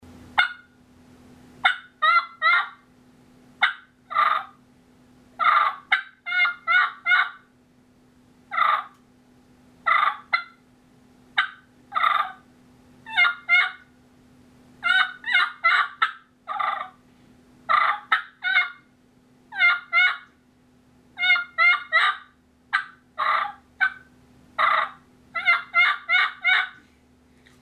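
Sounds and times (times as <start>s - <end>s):
turkey yelping softly: 0.4s - 0.7s, 1.6s - 2.8s, 3.6s - 4.6s, 5.4s - 7.5s, 8.5s - 9.0s, 9.9s - 10.6s, 11.4s - 12.4s, 13.1s - 13.9s, 14.8s - 17.0s, 17.7s - 18.8s, 19.5s - 20.3s, 21.2s - 26.8s.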